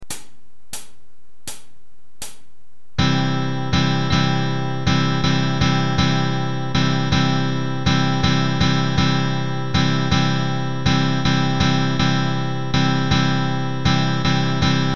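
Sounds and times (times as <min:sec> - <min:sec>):
guitar strumming exercise: 0:03.0 - 0:14.9.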